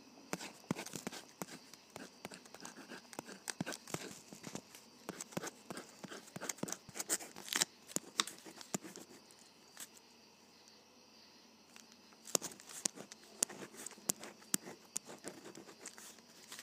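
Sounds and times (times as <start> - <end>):
ballpoint pen scratching across paper: 0.3 - 7.4, 8.0 - 9.2, 12.3 - 16.6.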